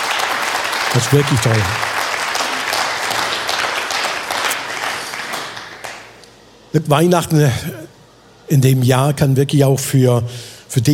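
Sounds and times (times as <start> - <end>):
audience applauding: 0.0 - 6.2
speech: 1.0 - 1.9, 6.8 - 7.9, 8.5 - 10.9.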